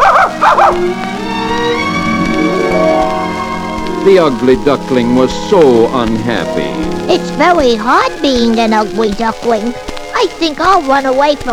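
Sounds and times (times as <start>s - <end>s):
dog barking: 0.0s - 0.9s
steady tonal backdrop: 0.3s - 9.9s
speech: 4.0s - 11.5s.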